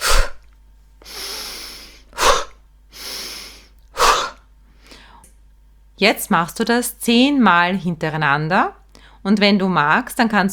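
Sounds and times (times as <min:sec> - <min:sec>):
quick forceful exhales through the mouth in a breathing exercise: 0:00.0 - 0:00.4, 0:01.0 - 0:05.2
deep inhales through the nose in a breathing exercise: 0:01.0 - 0:05.2
speech: 0:06.0 - 0:10.5.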